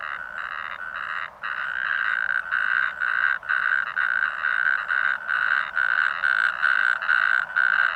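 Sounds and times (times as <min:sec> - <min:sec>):
natterjack toad calling: 0:00.0 - 0:07.9.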